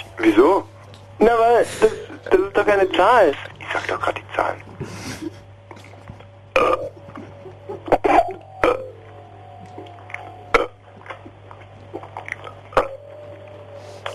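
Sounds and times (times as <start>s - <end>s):
steady low hum: 0.0s - 14.1s
speech: 0.2s - 5.0s
short gulps and mouth noises: 5.7s - 9.0s, 9.6s - 14.1s
loud croaking burps: 6.5s - 7.2s, 7.8s - 8.9s, 10.5s - 11.2s, 11.9s - 13.0s.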